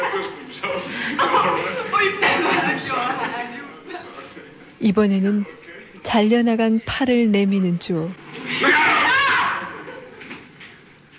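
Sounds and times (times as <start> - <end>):
laughter: 0.0 - 4.6, 8.5 - 10.6
speech: 4.8 - 8.9
woman screaming in fright: 8.6 - 9.8.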